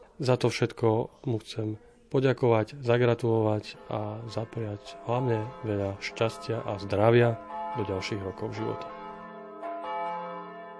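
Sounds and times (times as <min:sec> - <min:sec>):
speech: 0:00.2 - 0:09.0
deep medieval church bell tolling at a monastery site: 0:03.0 - 0:10.7.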